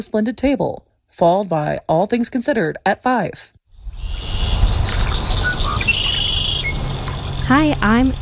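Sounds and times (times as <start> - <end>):
speech: 0.0 - 4.6, 7.5 - 8.1
birds chirping and trilling at a bird sanctuary: 3.7 - 8.1
low steady rumble: 4.0 - 8.1.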